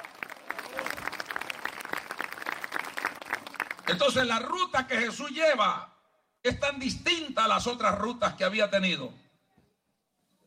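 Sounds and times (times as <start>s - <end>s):
audience applauding: 0.0s - 4.0s
speech: 3.9s - 9.2s.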